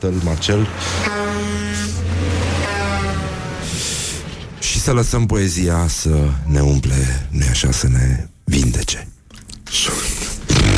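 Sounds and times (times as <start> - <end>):
speech: 0.0 - 2.0, 4.8 - 9.2
heavy truck engine rumbling: 0.0 - 6.3
truck air brakes hissing: 0.8 - 4.6.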